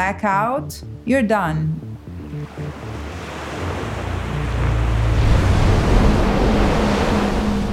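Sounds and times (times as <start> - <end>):
speech: 0.0 - 3.1
heavy ocean surf with big waves breaking: 1.8 - 7.7.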